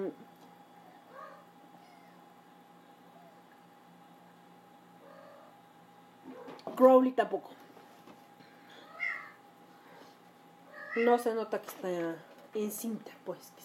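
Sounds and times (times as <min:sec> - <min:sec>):
steady low electrical hum: 0:00.0 - 0:13.6
domestic cats meowing: 0:00.9 - 0:02.3, 0:08.8 - 0:09.4, 0:10.7 - 0:11.2
speech: 0:06.8 - 0:07.6, 0:11.0 - 0:13.6.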